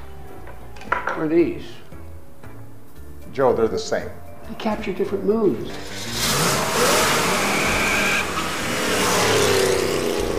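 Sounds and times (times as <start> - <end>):
speech: 1.2 - 1.9, 3.4 - 6.2
car engine revving hard while driven through its gears: 5.8 - 10.3.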